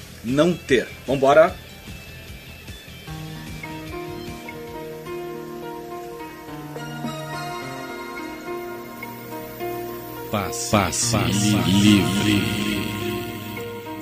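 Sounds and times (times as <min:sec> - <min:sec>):
speech: 0:00.2 - 0:01.6, 0:10.4 - 0:13.1
pop song with sung vocals over melodic instrumental backing: 0:10.4 - 0:13.7.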